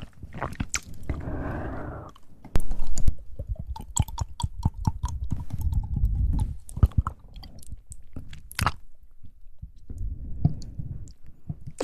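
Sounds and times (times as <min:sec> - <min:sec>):
soft chewing and crunching: 0:00.0 - 0:01.4, 0:02.0 - 0:11.8
wet mouth sounds with quick clicks and smacks: 0:00.5 - 0:01.0, 0:02.6 - 0:08.8.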